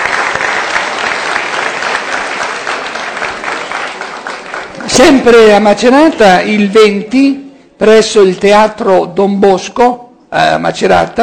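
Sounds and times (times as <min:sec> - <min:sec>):
audience applause for an artist's exhibition: 0:00.0 - 0:05.5
speech: 0:05.0 - 0:11.2.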